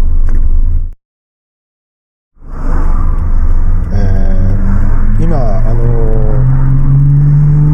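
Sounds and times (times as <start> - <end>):
car carrier truck engine passing by: 2.4 - 7.7
person talking: 3.9 - 4.6, 5.2 - 6.6.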